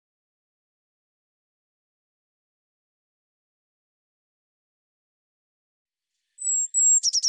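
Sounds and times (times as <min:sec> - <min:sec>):
Eurasian blue tit call of high whistles and scratchy churring notes: 0:06.4 - 0:07.2.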